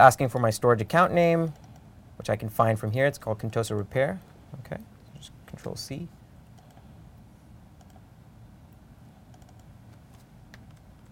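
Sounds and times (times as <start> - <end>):
speech: 0.0 - 1.6, 2.2 - 6.2
constant low hum: 0.0 - 11.0
computer keyboard typing: 7.8 - 8.0, 9.3 - 9.7, 10.5 - 11.0.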